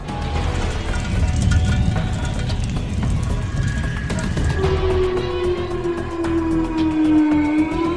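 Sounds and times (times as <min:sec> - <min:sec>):
constant rough rumble of wind and rain: 0:00.0 - 0:06.1
tornado warning sirens wailing: 0:00.0 - 0:07.9.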